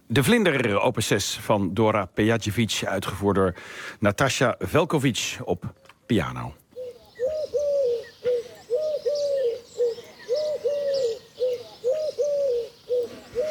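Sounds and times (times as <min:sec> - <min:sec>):
speech: 0:00.1 - 0:06.6
Eurasian collared dove cooing: 0:06.7 - 0:13.4.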